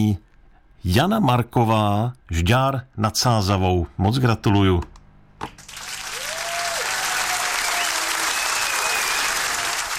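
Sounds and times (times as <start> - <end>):
speech: 0.0 - 0.2, 0.8 - 5.6
audience applause: 5.6 - 9.9.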